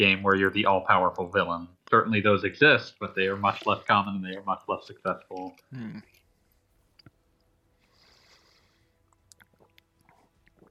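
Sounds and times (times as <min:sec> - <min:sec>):
speech: 0:00.0 - 0:06.1
hiss: 0:00.0 - 0:09.0
soft chewing of food: 0:03.4 - 0:10.6.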